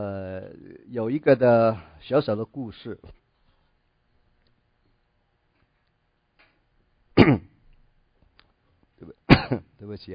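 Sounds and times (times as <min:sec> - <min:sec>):
speech: 0:00.0 - 0:03.2, 0:09.0 - 0:10.1
sharp loud throat-clearing cough: 0:07.2 - 0:07.6, 0:09.3 - 0:09.7.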